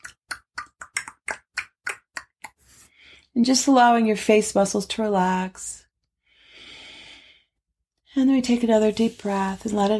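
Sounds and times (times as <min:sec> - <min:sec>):
tongue clicks against roof of mouth: 0:00.0 - 0:02.6
speech: 0:03.4 - 0:05.8, 0:08.2 - 0:09.9.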